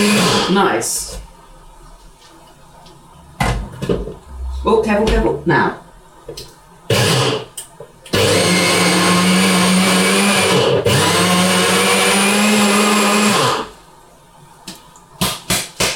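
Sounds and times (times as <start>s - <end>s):
blender grinding nuts into a powder: 0.0s - 0.6s, 6.9s - 13.8s
speech: 0.0s - 1.2s, 4.6s - 7.0s.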